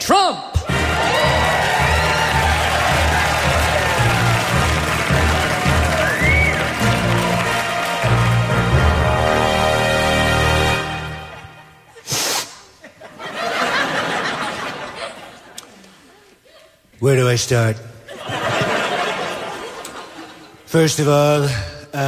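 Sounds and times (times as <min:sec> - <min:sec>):
crowd applauding and cheering: 0:00.6 - 0:11.8
laughter: 0:11.9 - 0:16.8, 0:18.1 - 0:20.7
speech: 0:17.0 - 0:17.9, 0:20.7 - 0:22.0.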